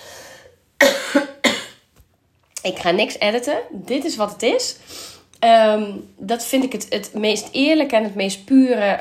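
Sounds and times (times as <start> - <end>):
person coughing dryly: 0.8 - 1.8
speech: 2.6 - 8.9.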